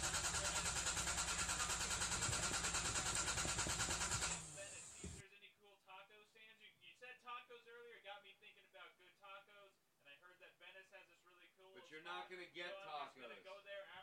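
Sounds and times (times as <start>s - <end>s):
car engine cranking but failing to start: 0.0s - 5.2s
speech: 11.9s - 13.8s.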